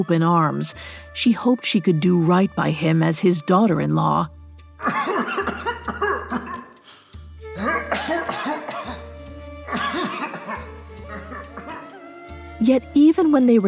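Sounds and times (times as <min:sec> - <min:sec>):
speech: 0:00.0 - 0:05.3, 0:12.6 - 0:13.6
elderly man coughing harshly: 0:04.8 - 0:06.7, 0:07.6 - 0:09.1, 0:09.7 - 0:11.8.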